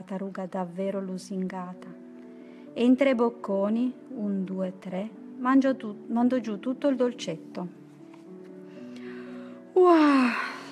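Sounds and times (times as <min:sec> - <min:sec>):
speech: 0:00.0 - 0:02.0, 0:02.8 - 0:07.8, 0:09.8 - 0:10.5
narrator's voice imitating a tortoise's yawn: 0:09.9 - 0:10.7.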